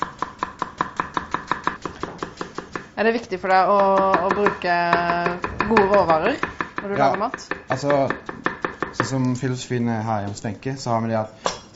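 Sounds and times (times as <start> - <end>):
knife finely chopping onion: 0.0 - 3.0, 3.7 - 9.2
speech: 3.0 - 11.7.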